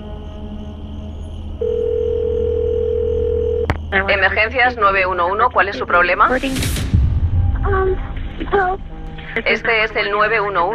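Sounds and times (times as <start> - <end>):
telephone dial tone: 1.6 - 3.7
speech: 3.9 - 6.8, 7.6 - 10.7.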